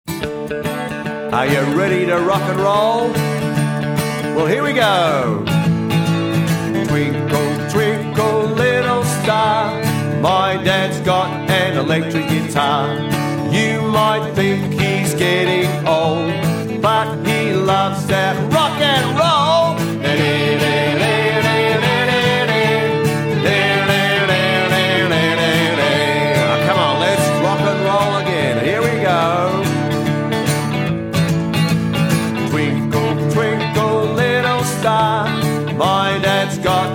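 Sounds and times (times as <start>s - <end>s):
rock guitar melody: 0.1s - 36.9s.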